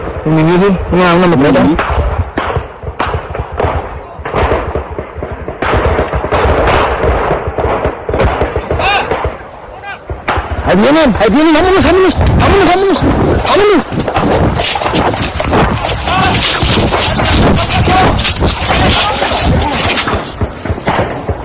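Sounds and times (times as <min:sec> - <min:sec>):
speech: 0:00.2 - 0:02.0, 0:10.7 - 0:15.6, 0:16.3 - 0:20.0
bursts of gunfire from an armed clash: 0:01.6 - 0:21.4
people shouting tensely: 0:08.4 - 0:20.8.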